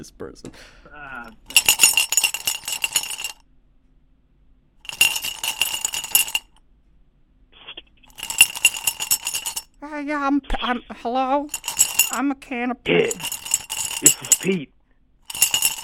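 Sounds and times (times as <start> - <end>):
speech: 0.0 - 1.8, 10.0 - 13.3, 14.0 - 14.8
pens rattling and clinking inside a cup: 1.3 - 3.4, 4.9 - 6.4, 8.1 - 9.7, 11.5 - 12.2, 13.0 - 14.5, 15.3 - 15.8.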